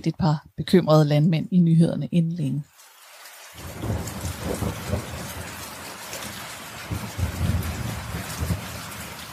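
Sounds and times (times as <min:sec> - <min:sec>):
speech: 0:00.0 - 0:02.7
steady rain: 0:01.0 - 0:09.3
deep rolls of thunder: 0:03.6 - 0:09.3.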